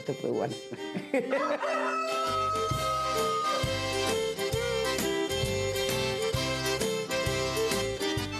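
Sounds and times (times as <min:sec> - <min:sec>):
speech: 0:00.0 - 0:03.7
rooster crowing: 0:01.3 - 0:03.9
upbeat music with thumping bass line: 0:02.3 - 0:08.3.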